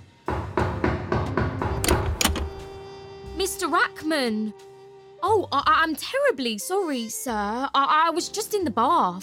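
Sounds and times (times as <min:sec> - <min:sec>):
solid thuds and wooden knocks of a door being opened: 0:01.2 - 0:02.8
latch-like clicks and rattles of a door: 0:01.8 - 0:02.8
speech: 0:03.6 - 0:09.2.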